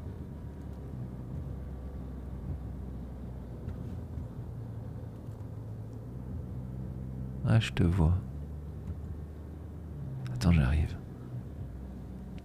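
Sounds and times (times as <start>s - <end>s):
small sports car engine rumbling: 0.0s - 12.4s
speech: 7.5s - 8.3s, 10.4s - 11.0s.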